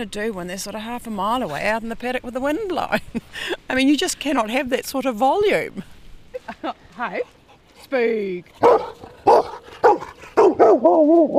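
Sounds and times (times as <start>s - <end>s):
speech: 0.0s - 5.9s, 6.5s - 11.3s
female working farm dog barking: 8.6s - 11.3s.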